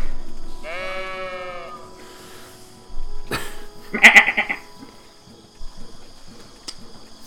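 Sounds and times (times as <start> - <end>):
single wavering sheep bleat: 0.6 - 1.9, 3.9 - 4.6.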